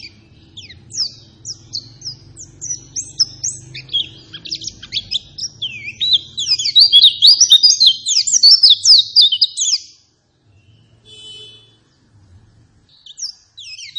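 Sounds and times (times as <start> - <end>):
white-eye singing fast continuous high lure song: 0.0 - 10.0, 12.9 - 13.9.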